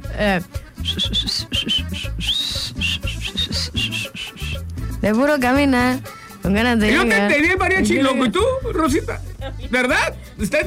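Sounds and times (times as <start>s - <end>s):
steady low-pitched music with a rhythmic bass pulse: 0.0s - 10.6s
speech: 0.2s - 1.6s, 5.0s - 10.6s
person whistling a quick wavering melody: 0.7s - 4.7s.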